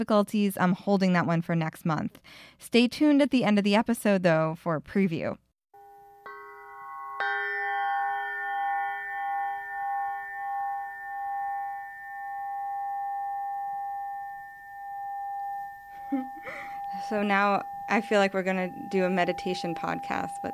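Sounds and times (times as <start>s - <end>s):
speech: 0.0s - 5.4s, 17.1s - 20.5s
crystal quartz pyramid struck and ringing: 5.8s - 20.5s.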